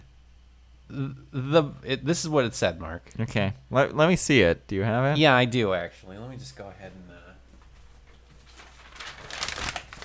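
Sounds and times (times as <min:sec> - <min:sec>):
speech: 0:00.9 - 0:07.4
large printed paper sheet being unfurled: 0:07.5 - 0:10.0.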